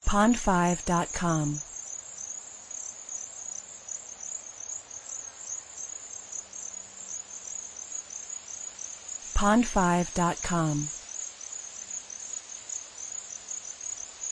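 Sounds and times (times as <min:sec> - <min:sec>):
speech: 0:00.1 - 0:01.7, 0:09.4 - 0:11.0
cricket trilling: 0:01.6 - 0:09.3, 0:11.0 - 0:14.3.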